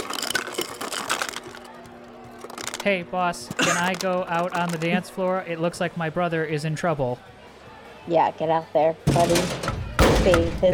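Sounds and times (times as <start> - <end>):
smart fridge dispenser grinding and rattling out crushed ice: 0.0 - 5.8
speech: 2.8 - 7.4, 8.0 - 10.7.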